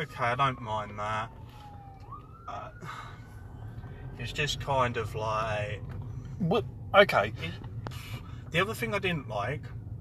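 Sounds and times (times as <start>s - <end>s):
speech: 0.0s - 1.6s, 4.2s - 10.0s
ambulance siren wailing outside: 0.0s - 7.7s
low traffic rumble: 0.0s - 10.0s.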